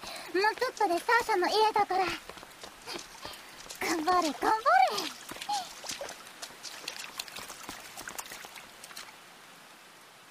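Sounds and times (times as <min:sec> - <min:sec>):
heavy rain: 0:00.0 - 0:10.2
speech: 0:00.3 - 0:02.3, 0:03.9 - 0:05.2.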